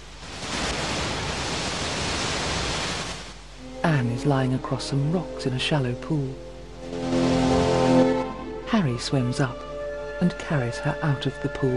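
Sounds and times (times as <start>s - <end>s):
roar of rushing water: 0.0s - 5.7s, 6.3s - 8.6s
speech: 3.8s - 7.2s, 8.7s - 11.7s.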